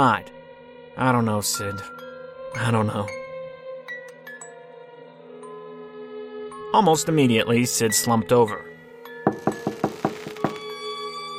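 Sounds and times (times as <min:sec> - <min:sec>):
speech: 0:00.0 - 0:00.4, 0:01.0 - 0:03.2, 0:06.8 - 0:08.7
knocking on a cell door: 0:09.3 - 0:10.6.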